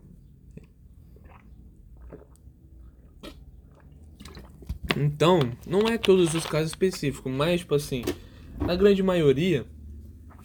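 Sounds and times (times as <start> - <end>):
person sipping water and swallowing: 0.5 - 7.1
speech: 5.0 - 9.7.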